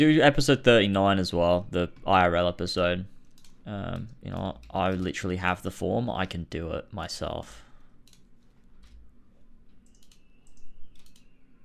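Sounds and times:
speech: 0:00.0 - 0:03.1, 0:03.7 - 0:07.6
steady low room hum: 0:00.0 - 0:11.6
soft computer clicks: 0:03.3 - 0:05.1, 0:08.0 - 0:09.0, 0:09.7 - 0:11.6.

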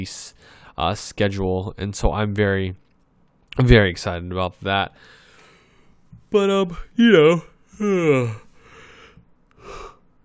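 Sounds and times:
speech: 0:00.0 - 0:02.8, 0:03.6 - 0:05.2, 0:06.3 - 0:08.4
person yawning out loud: 0:07.7 - 0:08.5.

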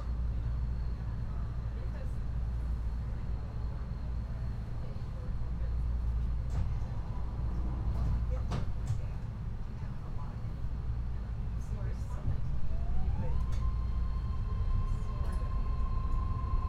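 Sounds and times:
rapid-transit train rolling with low rumble and hiss: 0:00.0 - 0:16.6
clicks and clunks from the track: 0:06.1 - 0:09.9, 0:13.4 - 0:13.7
rising whine of a rapid-transit train: 0:12.7 - 0:16.6.

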